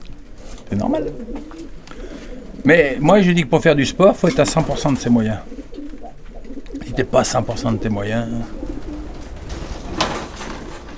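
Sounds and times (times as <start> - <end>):
racing pigeon rustle or flutter: 0.0 - 2.7, 3.9 - 10.9
racing pigeons cooing in low throaty murmurs: 0.0 - 10.9
speech: 0.7 - 5.6, 7.0 - 8.6.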